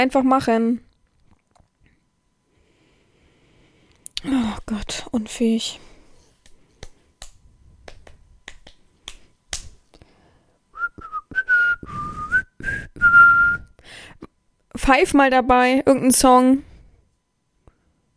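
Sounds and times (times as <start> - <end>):
speech: 0.0 - 0.9, 4.2 - 5.9, 14.8 - 16.7
finger snaps: 6.4 - 10.1
person whistling a tune: 10.8 - 13.8.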